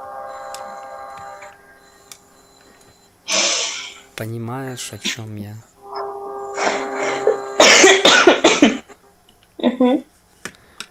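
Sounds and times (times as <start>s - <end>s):
speech: 4.2s - 5.7s, 9.8s - 10.1s
person coughing: 6.6s - 9.0s.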